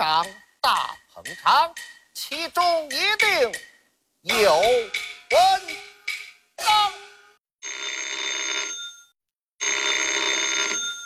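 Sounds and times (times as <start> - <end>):
speech: 1.2 - 5.8
old-fashioned telephone bell ringing: 7.6 - 11.0.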